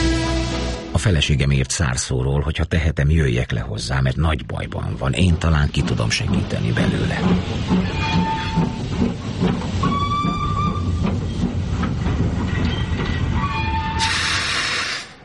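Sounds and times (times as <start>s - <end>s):
speech: 1.0s - 9.5s
train rumbling on rails: 3.1s - 15.2s
thin metallic train wheel squeals: 7.7s - 8.9s, 9.8s - 11.5s, 12.5s - 15.2s
sharp burst of hissing air: 14.0s - 15.2s.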